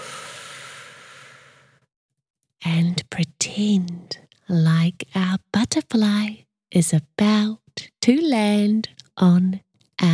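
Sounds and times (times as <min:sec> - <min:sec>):
deep breath in: 0:00.0 - 0:01.8
speech: 0:03.6 - 0:10.1.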